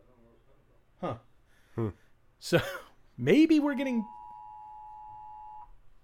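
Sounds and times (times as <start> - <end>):
speech: 1.0 - 4.2
phone Amber Alert tone beeping: 4.0 - 6.0.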